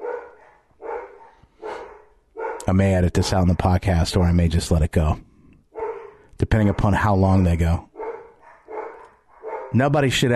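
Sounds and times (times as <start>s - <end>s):
dogs barking: 0.0s - 2.7s, 5.7s - 9.9s
speech: 2.7s - 5.3s, 6.4s - 7.9s, 9.7s - 10.3s.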